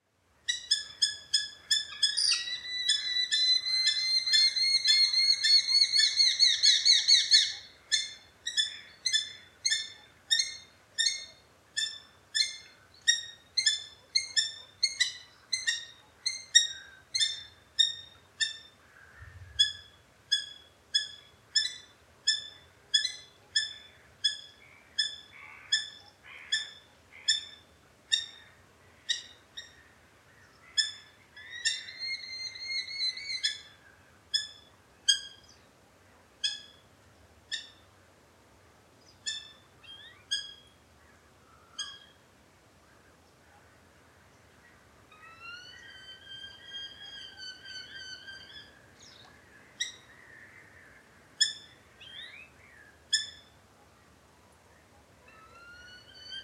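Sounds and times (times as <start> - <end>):
Eurasian hobby calling: 0.5 - 35.7, 39.1 - 42.2, 42.8 - 53.6, 54.8 - 56.4.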